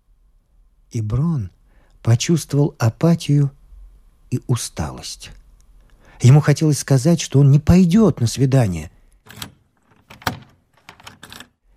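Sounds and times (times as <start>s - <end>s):
speech: 0.9s - 3.6s, 4.3s - 5.4s, 6.2s - 9.5s
heavy metal prison cell door being unlocked and opened: 9.2s - 11.5s
keys jangling: 9.3s - 11.6s.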